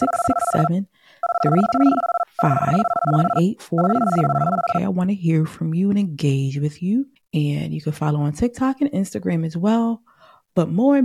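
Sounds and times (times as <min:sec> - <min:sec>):
telephone ringing tone, two-pitched electronic ring: 0:00.0 - 0:04.8
speech: 0:00.0 - 0:11.0.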